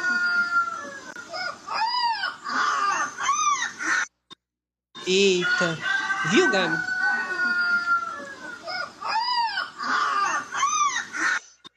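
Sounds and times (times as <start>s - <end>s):
rooster crowing: 0.0s - 3.4s, 5.2s - 11.1s
speech: 5.1s - 6.9s.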